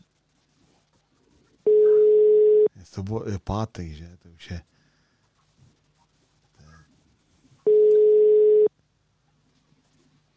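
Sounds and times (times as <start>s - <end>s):
telephone ringback tone over a quiet line: 1.7s - 2.7s, 7.7s - 8.7s
speech: 2.8s - 4.8s.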